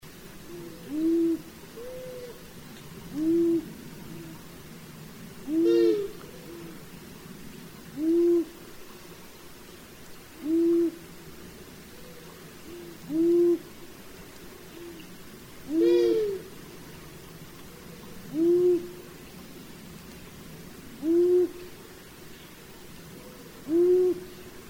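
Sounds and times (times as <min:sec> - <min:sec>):
long-eared owl calling: 0:00.4 - 0:02.4, 0:03.1 - 0:04.3, 0:05.4 - 0:06.8, 0:08.0 - 0:08.6, 0:10.4 - 0:11.0, 0:11.9 - 0:13.8, 0:15.7 - 0:16.5, 0:17.7 - 0:19.0, 0:21.0 - 0:21.7, 0:23.2 - 0:24.4.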